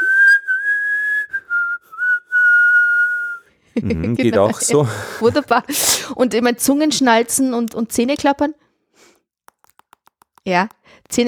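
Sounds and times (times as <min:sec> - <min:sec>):
high-pitched whistling while breathing in: 0:00.0 - 0:03.5
laughter: 0:03.8 - 0:05.5
speech: 0:03.8 - 0:08.6, 0:10.5 - 0:11.2.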